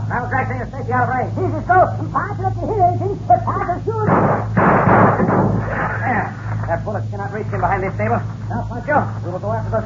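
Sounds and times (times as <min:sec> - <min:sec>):
speech: 0:00.2 - 0:04.5, 0:05.2 - 0:09.8
gunshot bursts in a Western shootout: 0:04.1 - 0:05.9.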